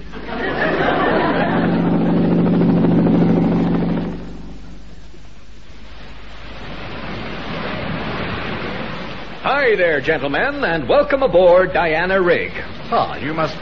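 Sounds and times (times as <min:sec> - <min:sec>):
laughter: 0:00.0 - 0:02.3
rushing wind and sea wash: 0:00.0 - 0:13.6
helicopter descending to land on a rig: 0:01.2 - 0:04.9
speech: 0:09.7 - 0:13.6.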